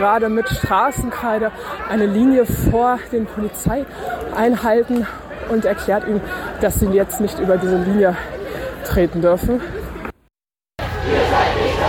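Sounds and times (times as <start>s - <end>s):
speech: 0.0s - 9.8s
roar of a street protest crowd at a blockade facing police: 10.8s - 11.8s.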